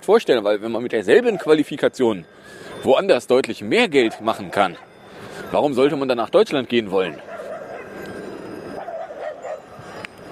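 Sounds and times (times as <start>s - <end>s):
speech: 0.0s - 4.9s, 5.5s - 7.3s
dog barking and yipping at another dog: 1.2s - 1.6s, 4.0s - 4.9s, 7.1s - 8.0s, 8.8s - 10.0s.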